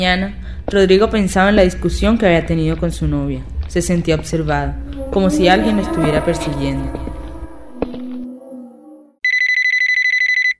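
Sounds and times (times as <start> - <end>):
speech: 0.0 - 7.1
low droning tone: 3.4 - 9.2
electronic telephone ringtone with incoming call: 9.2 - 10.5.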